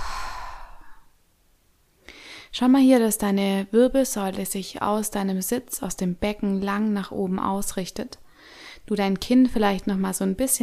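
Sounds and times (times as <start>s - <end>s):
deep exhale through the mouth during a yoga breathing exercise: 0.0s - 1.1s
speech: 2.6s - 10.6s.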